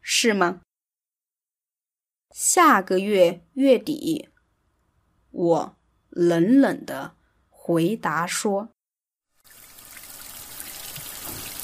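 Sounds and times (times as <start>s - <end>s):
speech: 0.2s - 0.7s, 2.3s - 4.3s, 5.3s - 8.8s
shower water running in a bathroom: 9.4s - 11.6s.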